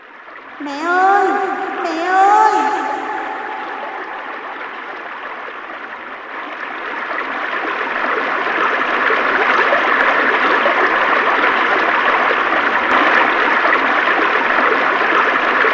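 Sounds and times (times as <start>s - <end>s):
flowing stream water babbling: 0.5s - 15.6s
speech: 0.6s - 2.4s.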